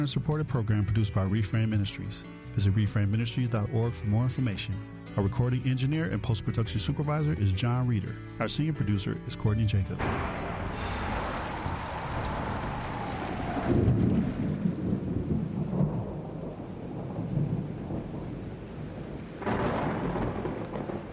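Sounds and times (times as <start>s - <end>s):
speech: 0.0s - 11.0s
deep thunder rumbles and cracks: 10.0s - 21.1s
steady rain hissing: 10.0s - 21.1s.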